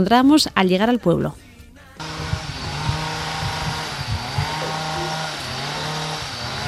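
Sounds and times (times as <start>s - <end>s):
speech: 0.0s - 1.5s
chainsaw running at high revs in the rural village of Zerain: 2.0s - 6.6s.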